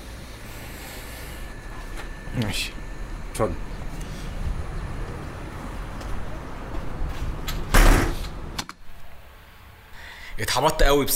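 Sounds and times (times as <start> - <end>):
hum: 0.0 - 11.1
speech: 2.4 - 2.8, 3.4 - 3.7, 10.4 - 11.1
door sliding and closing: 7.0 - 8.6.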